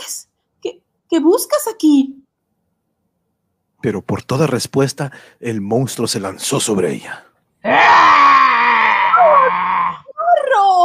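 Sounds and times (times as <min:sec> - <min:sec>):
speech: 0:01.1 - 0:02.3, 0:03.8 - 0:09.7
woman screaming in terror: 0:07.6 - 0:10.8.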